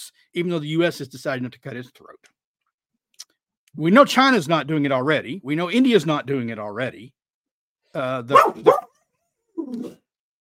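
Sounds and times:
speech: 0.1 - 2.4, 3.7 - 7.2, 7.9 - 8.9, 9.6 - 10.0
German Shorthaired Pointer barking and yelping: 8.3 - 8.9.

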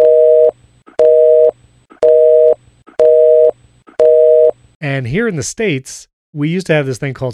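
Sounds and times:
telephone busy signal: 0.0 - 4.5
speech: 4.8 - 7.3.

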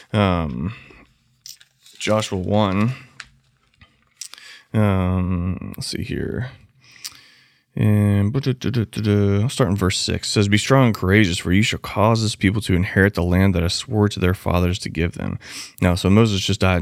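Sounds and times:
speech: 0.1 - 1.0, 2.0 - 3.1, 4.7 - 6.6, 7.8 - 16.8
paper Bible being grabbed and its pages turned: 0.9 - 4.3.

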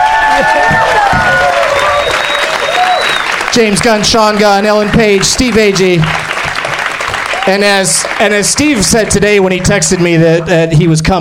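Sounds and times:
live audience cheers and whoops: 0.0 - 3.4, 7.2 - 7.7
live audience clapping: 0.0 - 10.5
speech: 3.6 - 6.2, 7.4 - 11.1.

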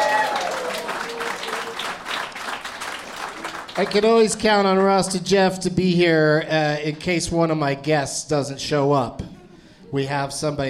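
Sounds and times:
audience applause: 0.0 - 4.2
speech: 3.8 - 9.3, 9.9 - 10.6.

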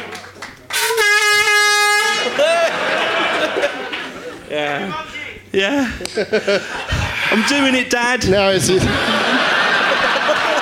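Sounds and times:
loud sustained air horn blast: 0.7 - 2.5
laughter: 2.1 - 5.0, 5.7 - 10.6
speech: 4.9 - 9.2.

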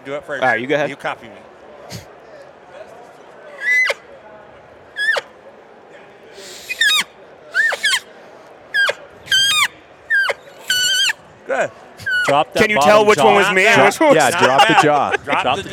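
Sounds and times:
speech: 0.0 - 2.1, 11.6 - 15.7
cow elk calls blown on a reed game call: 3.6 - 4.0, 5.0 - 5.3, 6.4 - 8.0, 8.7 - 11.2, 12.0 - 12.6
laughter: 12.0 - 15.7.

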